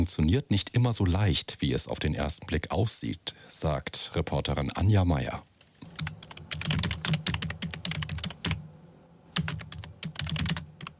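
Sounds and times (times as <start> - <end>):
speech: 0.0 - 5.5
fingers typing on a computer keyboard in a Berlin office: 5.9 - 8.6, 9.4 - 10.9.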